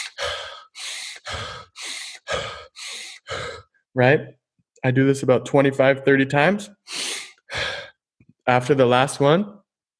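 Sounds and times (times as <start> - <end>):
loud deep breathing through the nose during a breathing exercise: 0.0 - 3.7, 6.9 - 8.0
speech: 4.0 - 6.8, 8.5 - 9.6.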